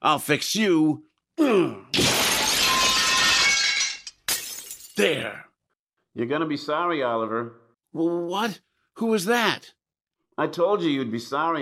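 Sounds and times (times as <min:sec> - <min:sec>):
speech: 0:00.0 - 0:02.2, 0:05.0 - 0:05.4, 0:06.2 - 0:09.8, 0:10.4 - 0:11.6
mirror being smashed with a drinking glass: 0:02.0 - 0:05.0.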